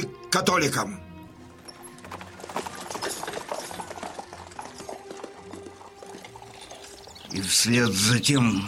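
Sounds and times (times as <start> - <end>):
speech: 0.3 - 1.0, 7.4 - 8.6
horse hooves clip-clopping: 1.3 - 7.4.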